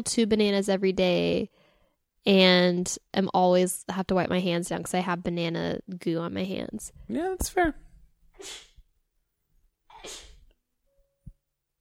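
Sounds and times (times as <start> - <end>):
speech: 0.0 - 1.6, 2.2 - 7.8, 8.4 - 8.7, 10.0 - 10.3
person sneezing: 8.4 - 8.8, 9.9 - 10.5.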